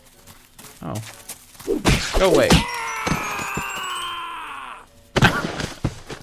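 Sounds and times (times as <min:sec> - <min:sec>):
speech: 0:00.8 - 0:02.7
long strained video game scream sliding downward in pitch: 0:02.3 - 0:04.9.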